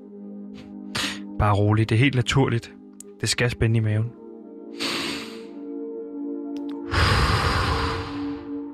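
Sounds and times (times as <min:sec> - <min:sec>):
deep breath in through the nose: 0:01.0 - 0:01.2, 0:04.8 - 0:05.6, 0:06.8 - 0:08.6
speech: 0:01.4 - 0:04.9
exhale through the mouth: 0:04.8 - 0:05.6, 0:06.8 - 0:08.5.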